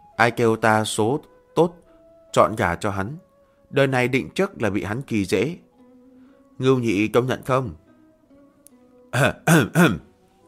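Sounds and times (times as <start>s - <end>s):
speech: 0.2s - 5.6s, 6.6s - 7.8s, 9.1s - 10.1s
narrator clearing throat while voicing a character: 9.2s - 10.1s.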